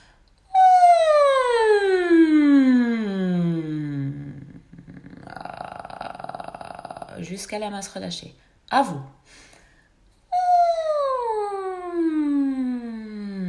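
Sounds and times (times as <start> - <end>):
voice imitating a descending siren in a vocal exercise: 0.5 - 4.5, 10.4 - 13.4
speech: 7.2 - 9.5.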